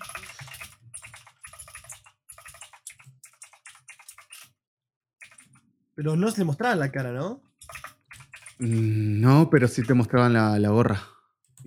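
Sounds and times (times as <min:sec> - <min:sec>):
rapid clattering typing on a computer keyboard: 0:00.0 - 0:04.5, 0:05.2 - 0:05.6, 0:07.0 - 0:08.9
speech: 0:06.0 - 0:07.5, 0:08.6 - 0:11.6.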